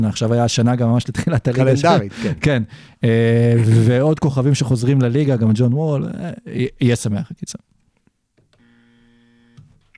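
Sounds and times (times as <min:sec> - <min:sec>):
speech: 0:00.0 - 0:07.7
steady electronic buzzer: 0:08.6 - 0:09.7.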